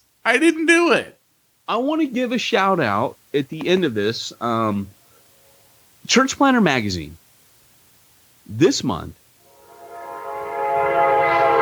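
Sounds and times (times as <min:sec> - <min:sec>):
speech: 0:00.2 - 0:05.0, 0:06.0 - 0:07.2, 0:08.5 - 0:09.2
approaching train horn blaring: 0:09.4 - 0:11.6.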